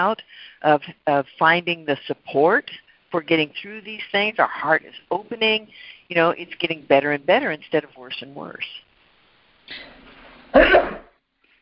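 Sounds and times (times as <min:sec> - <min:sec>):
speech: 0:00.0 - 0:08.8, 0:09.7 - 0:11.0
sneeze: 0:09.7 - 0:11.2.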